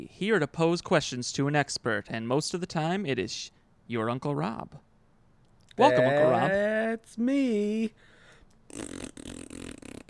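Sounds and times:
speech: 0.1s - 4.9s, 5.8s - 8.1s, 8.7s - 10.0s
buzzy soundboard fart sound effect: 8.7s - 10.0s.

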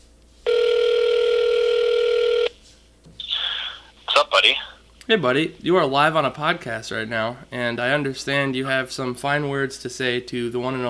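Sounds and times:
telephone tone as a call is put through to a caller: 0.5s - 2.5s
speech: 4.4s - 10.8s.

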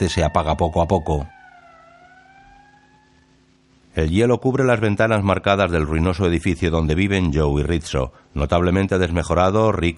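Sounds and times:
speech: 0.0s - 1.4s, 4.0s - 9.9s
faint police car siren wailing in a street scene: 0.0s - 3.5s.

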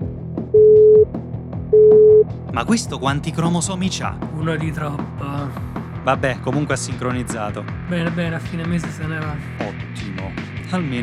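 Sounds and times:
rhythmic music: 0.0s - 11.0s
telephone tone while placing a call: 0.6s - 1.1s, 1.8s - 2.2s
speech: 2.6s - 11.0s.

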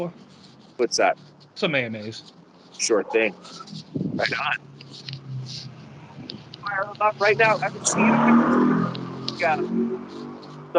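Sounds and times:
speech: 0.0s - 5.6s, 6.7s - 8.7s, 9.4s - 10.7s
person murmuring faintly: 0.8s - 2.2s, 2.8s - 8.2s
motorbike speeding past: 7.3s - 10.7s.

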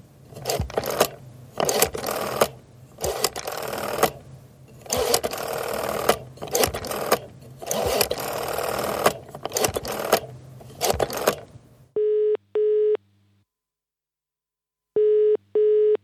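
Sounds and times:
rattling mechanical noise: 0.0s - 11.8s
British-style telephone ringing tone: 12.0s - 13.0s, 15.0s - 16.0s.

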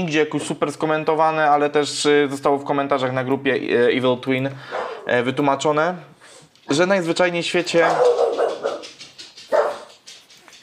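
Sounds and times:
speech: 0.0s - 6.1s, 6.7s - 8.3s
dog barking: 4.6s - 5.1s, 7.7s - 10.0s.

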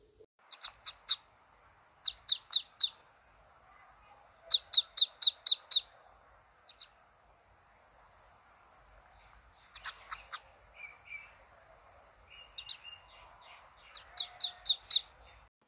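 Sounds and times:
ducklings peeping: 0.5s - 1.3s, 2.0s - 3.1s, 4.4s - 6.0s, 6.6s - 7.0s, 9.2s - 11.4s, 12.4s - 15.5s.

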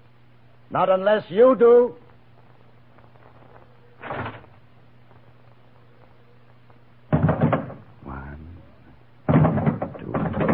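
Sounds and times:
speech: 0.7s - 2.0s
quiet low hum: 2.0s - 10.5s
door being opened with clattering and rattling: 7.1s - 7.8s, 9.3s - 10.5s.

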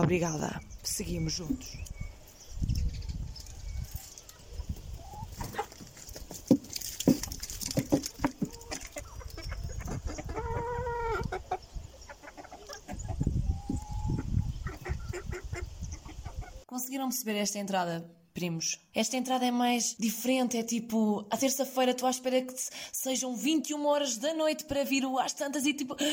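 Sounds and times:
speech: 0.0s - 1.9s, 17.1s - 26.1s
flock of excited chickens clucking and squawking: 2.6s - 6.5s, 7.7s - 16.7s.

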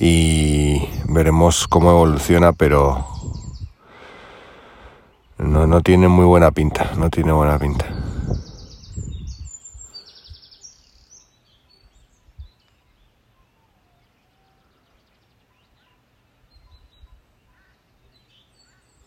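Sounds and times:
speech: 0.0s - 0.3s, 1.2s - 3.1s, 5.4s - 8.1s
low rumbling: 0.0s - 3.8s, 5.4s - 9.5s
birds chirping outdoors: 0.0s - 19.0s.

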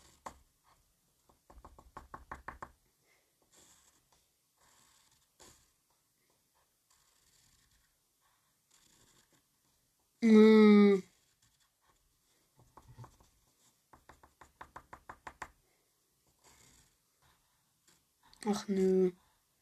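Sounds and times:
pen drawing on paper: 0.0s - 0.8s, 3.4s - 9.8s, 11.0s - 15.5s, 16.3s - 19.4s
person speaking: 10.2s - 11.1s, 18.3s - 19.2s
light regular taps: 12.6s - 15.6s.

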